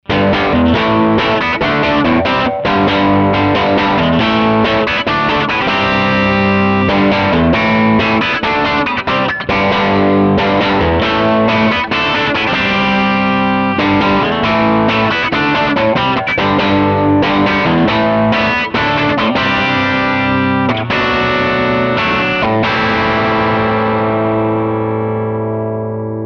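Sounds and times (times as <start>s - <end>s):
Gibson SG electric guitar playing rock: 0.0s - 26.2s.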